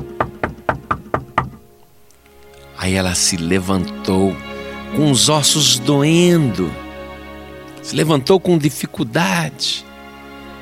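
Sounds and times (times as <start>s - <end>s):
knocking on a wooden door: 0.0s - 1.6s
speech: 2.8s - 6.8s, 7.9s - 9.9s.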